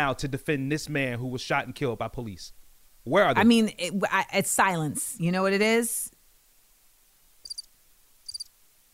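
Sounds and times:
speech: 0.0s - 6.1s
cricket chirping: 7.4s - 8.5s.

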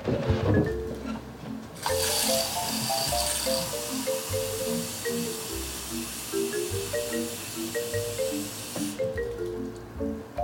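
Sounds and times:
soft music: 0.0s - 10.4s
water running into a measuring cup: 1.8s - 9.0s.

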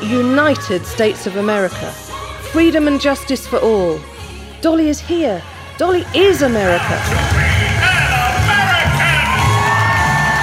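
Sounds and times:
speech: 0.0s - 7.3s
large crowd screaming and whooping: 6.7s - 10.4s.

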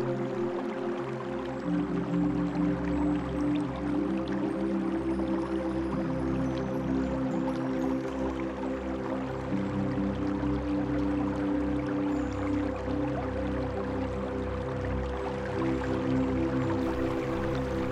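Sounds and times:
stream flowing and babbling: 0.0s - 17.8s
low sustained hum or drone: 16.8s - 17.8s.

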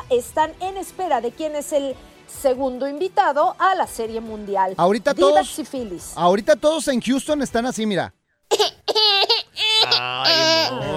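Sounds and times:
speech: 0.1s - 8.8s
high-pitched sobbing and wailing crying sound effect: 8.6s - 10.9s.

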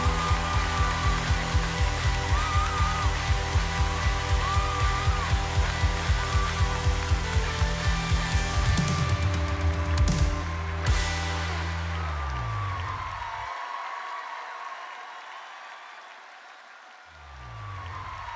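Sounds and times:
low droning tone: 0.0s - 12.8s
audience applause: 0.0s - 18.3s.

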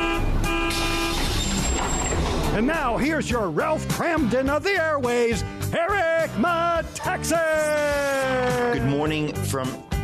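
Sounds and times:
bus horn giving a steady held toot: 0.0s - 1.8s
bus engine rumbling: 0.0s - 3.0s
speech: 2.6s - 9.9s.

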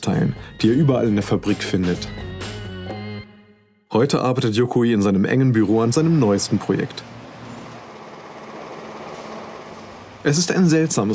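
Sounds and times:
speech: 0.0s - 2.3s, 3.9s - 7.1s, 10.2s - 11.1s
printing presses rumbling through wooden walls: 5.6s - 11.1s.

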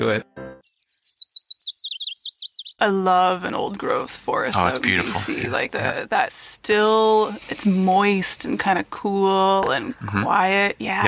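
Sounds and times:
speech: 0.0s - 0.3s, 2.8s - 11.0s
marbled murrelet calling: 0.6s - 2.8s.

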